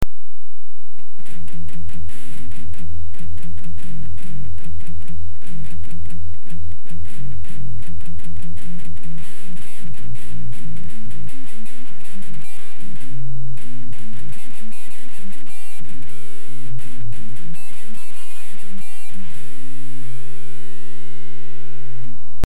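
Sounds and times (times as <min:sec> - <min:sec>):
palm-muted guitar strings: 0:01.1 - 0:22.4.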